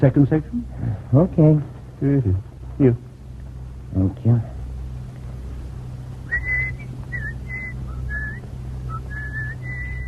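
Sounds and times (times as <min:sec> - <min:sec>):
speech: 0:00.0 - 0:03.1, 0:03.9 - 0:04.5
steady low hum: 0:00.0 - 0:10.0
person whistling a wandering tune: 0:06.3 - 0:10.0.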